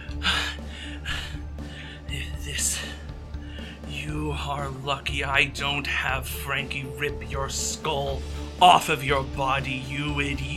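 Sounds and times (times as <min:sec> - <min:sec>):
heavy breathing: 0:00.0 - 0:03.9
speech: 0:04.1 - 0:10.5.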